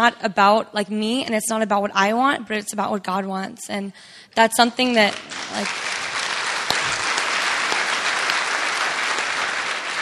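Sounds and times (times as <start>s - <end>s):
speech: 0.0s - 6.0s
crowd audience applause: 5.1s - 10.0s.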